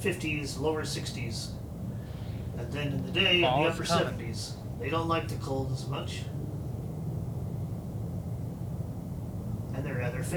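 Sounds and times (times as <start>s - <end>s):
speech: 0.0s - 1.7s, 2.6s - 6.4s, 9.9s - 10.3s
distant road traffic rumble: 0.0s - 10.3s.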